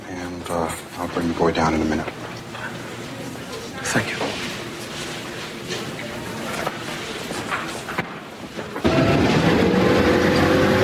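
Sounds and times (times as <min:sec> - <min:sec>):
speech: 0:00.5 - 0:02.2, 0:03.9 - 0:04.3
school bus engine pulling to a stop and idling: 0:08.8 - 0:10.8.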